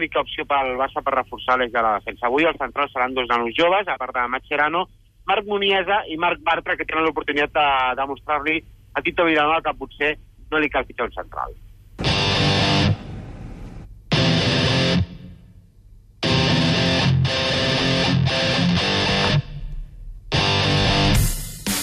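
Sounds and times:
speech: 0.0s - 11.6s
hard rock song cover with distorted guitar chords: 12.0s - 13.0s, 14.1s - 15.4s, 16.2s - 21.8s.

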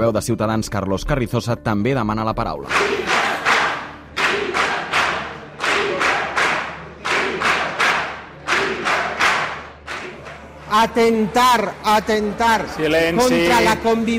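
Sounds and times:
speech: 0.0s - 3.3s, 10.7s - 14.1s
deputies chanting and shouting in a parliament: 2.7s - 14.1s
applause in parliament: 4.2s - 13.8s.

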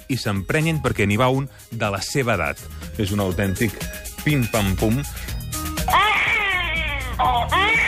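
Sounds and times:
speech: 0.1s - 5.4s
five-month-old infant wailing in the Spanish Congress of Deputies: 5.8s - 7.8s.

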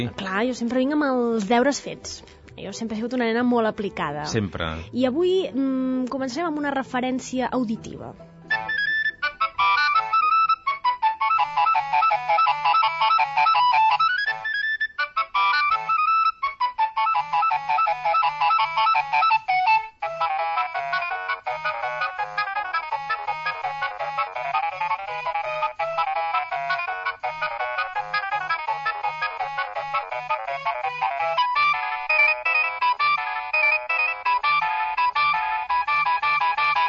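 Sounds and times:
speech: 0.0s - 8.3s
mobile phone incoming-call ringtone, bright electronic melody: 8.5s - 36.8s.

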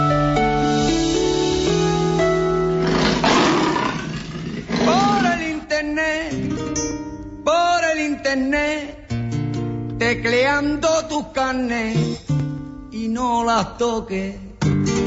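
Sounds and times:
sustained music: 0.0s - 15.0s
deep rough tiger roar: 2.8s - 5.5s
speech: 10.2s - 12.3s, 13.2s - 14.5s.

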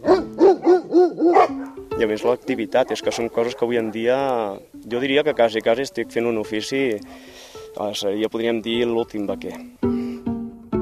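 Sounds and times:
herding dogs barking while working with livestock: 0.0s - 7.4s, 9.4s - 9.7s
speech: 2.0s - 10.0s.

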